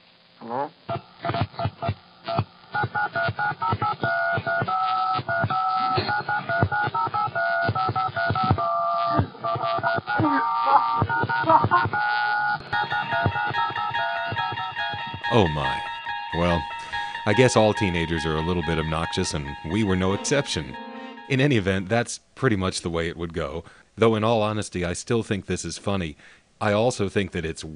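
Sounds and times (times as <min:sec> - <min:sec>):
speech: 0:00.5 - 0:00.8, 0:15.4 - 0:15.8, 0:17.3 - 0:27.7
touch-tone telephone keypad tones played as a tune: 0:02.9 - 0:21.4.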